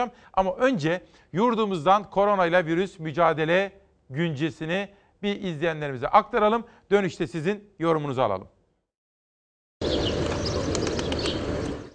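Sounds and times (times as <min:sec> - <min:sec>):
speech: 0:00.0 - 0:08.6
flock of birds flapping wings taking off in a big-city square: 0:09.8 - 0:11.9.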